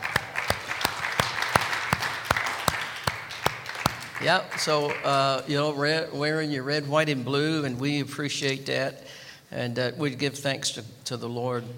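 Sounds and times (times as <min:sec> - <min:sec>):
crowd applauding: 0:00.0 - 0:05.4
speech: 0:04.2 - 0:11.7.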